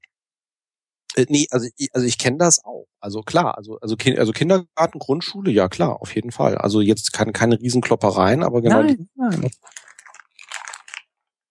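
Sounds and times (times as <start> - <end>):
speech: 1.2 - 9.9
crinkly rustling made by the speaker: 9.4 - 11.2.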